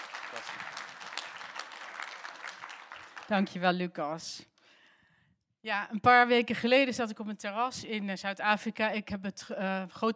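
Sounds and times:
audience applause welcoming a speaker: 0.0 - 3.5
speech: 3.3 - 4.5, 5.6 - 10.1.

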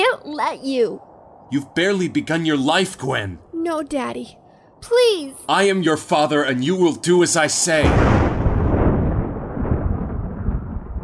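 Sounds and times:
speech: 0.2 - 8.3
thunder of an approaching storm: 7.7 - 11.0.

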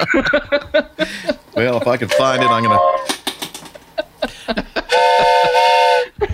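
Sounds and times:
speech: 0.0 - 3.0
laughter: 0.0 - 3.1, 3.9 - 6.3
toy train whistle blown: 2.1 - 3.1, 4.9 - 6.2
handling clicks and rattles: 3.0 - 3.9.

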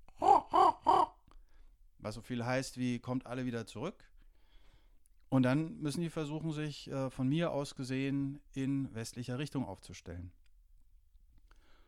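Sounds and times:
person imitating hoarse raven caws: 0.1 - 1.2
speech: 2.0 - 4.1, 5.3 - 10.4.

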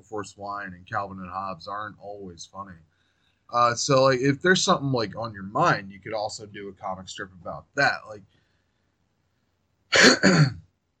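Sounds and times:
speech: 0.0 - 2.9, 3.5 - 8.4, 9.9 - 10.6
person coughing: 9.9 - 10.7.

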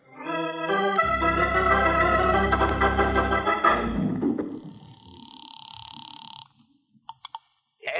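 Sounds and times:
loud sustained droning tone: 1.0 - 5.2.

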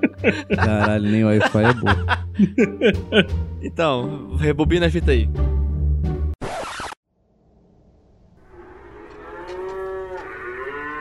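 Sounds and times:
laughter: 0.0 - 3.3
speech: 0.0 - 5.6
restless oxen mooing by a swaying cart: 8.4 - 10.9.

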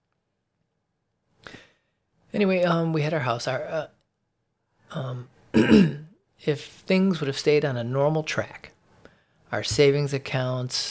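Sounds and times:
speech: 2.4 - 4.0, 4.9 - 8.7, 9.5 - 10.8
throat clearing: 5.5 - 6.2.

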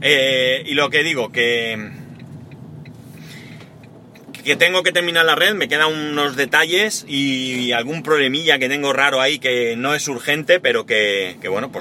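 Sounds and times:
speech: 0.0 - 2.0, 4.4 - 11.7
car engine humming as the vehicle creeps into a parking space: 0.0 - 11.7
faint intermittent ticking: 0.1 - 4.8.

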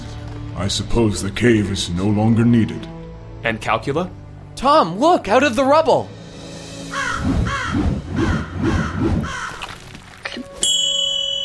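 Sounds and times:
speech: 0.6 - 6.2
raven cawing: 6.8 - 10.0
metallic ding: 10.6 - 11.4.

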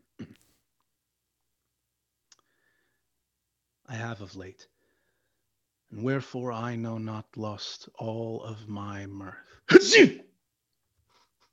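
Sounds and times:
speech: 3.9 - 4.8, 5.9 - 10.2
sneeze: 9.7 - 10.3.

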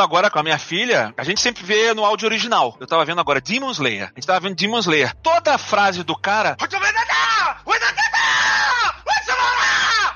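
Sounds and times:
speech: 0.0 - 8.0
person imitating a dramatic anime character screaming: 6.8 - 10.1.

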